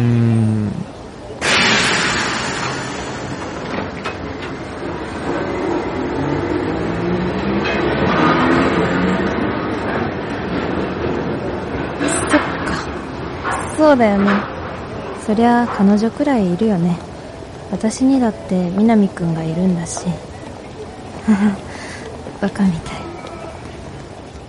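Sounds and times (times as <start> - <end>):
train arriving at station: 0.9 - 24.4
train brakes or doors hissing: 1.4 - 5.0
speech: 13.9 - 14.5, 15.3 - 17.0, 17.7 - 20.3, 21.3 - 21.7, 22.4 - 23.0.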